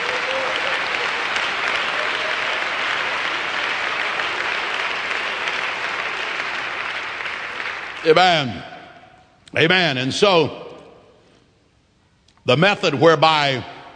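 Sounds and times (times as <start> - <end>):
audience clapping hands: 0.0 - 8.3
speech: 8.0 - 8.7, 9.5 - 10.6, 12.5 - 13.7.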